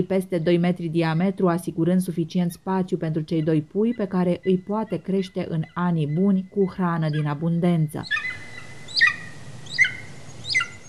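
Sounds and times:
speech: 0:00.0 - 0:08.5
golden eagle yelping calls: 0:03.2 - 0:10.8.

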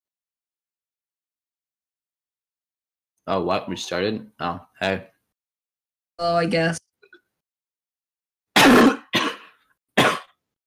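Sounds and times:
speech: 0:03.2 - 0:05.1, 0:06.2 - 0:06.9
harsh coughs: 0:08.6 - 0:10.4.

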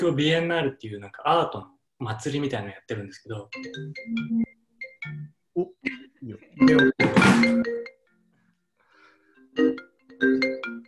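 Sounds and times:
speech: 0:00.0 - 0:07.9, 0:09.6 - 0:10.8
phone ringtone playing a bright melodic electronic tune: 0:03.6 - 0:05.4, 0:06.6 - 0:08.2, 0:09.5 - 0:10.8.

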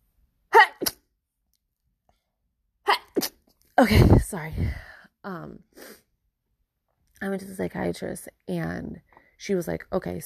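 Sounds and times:
person sneezing: 0:00.5 - 0:01.1, 0:02.9 - 0:03.4
speech: 0:03.8 - 0:06.0, 0:07.2 - 0:10.2.

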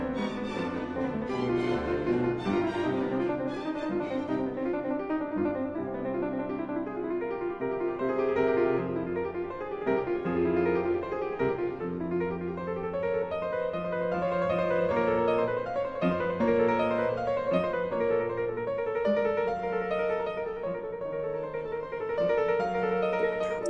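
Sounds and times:
classical piano sonata: 0:00.0 - 0:23.6.

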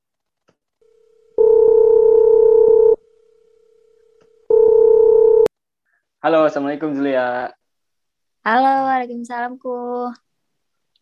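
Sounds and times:
ringback tone of an outgoing telephone call: 0:01.2 - 0:03.0, 0:03.9 - 0:05.5
speech: 0:06.2 - 0:07.6, 0:08.4 - 0:10.2.

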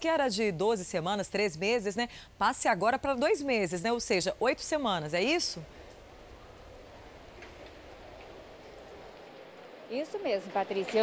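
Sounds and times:
speech: 0:00.0 - 0:05.8, 0:09.9 - 0:11.0
steady rain falling outdoors: 0:05.2 - 0:11.0.

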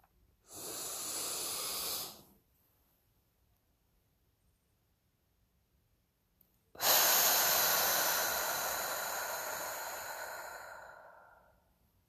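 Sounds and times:
long steady breathy exhale in a breathing exercise: 0:00.4 - 0:02.3, 0:06.8 - 0:11.7
soft hissing inhale in a breathing exercise: 0:00.4 - 0:02.4, 0:06.8 - 0:11.7.

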